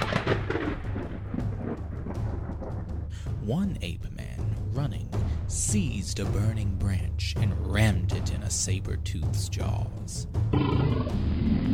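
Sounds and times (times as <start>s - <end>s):
rolling thunder rumble from a lightning strike: 0.0s - 3.2s
speech: 3.5s - 11.6s.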